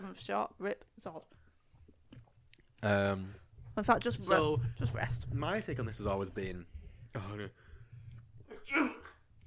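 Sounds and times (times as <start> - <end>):
speech: 0.2 - 1.4, 2.8 - 7.7
person sneezing: 8.5 - 9.2.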